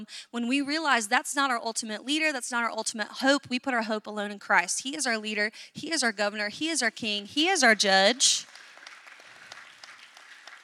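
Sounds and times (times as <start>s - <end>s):
speech: 0.0s - 8.6s
crowd clapping: 8.1s - 10.6s.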